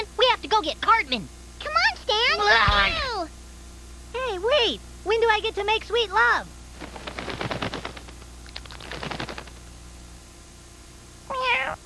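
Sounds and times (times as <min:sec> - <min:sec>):
speech: 0:00.6 - 0:03.1, 0:04.4 - 0:06.6
rapid rattling clatter: 0:06.8 - 0:09.7
cat meowing for food: 0:11.3 - 0:11.8.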